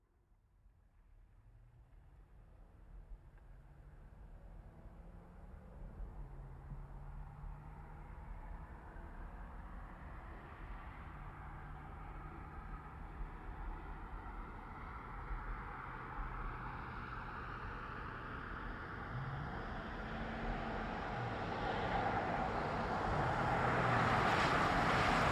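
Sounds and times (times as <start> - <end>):
GMC Savana van driving up, stopping and going fast: 4.6 - 25.2.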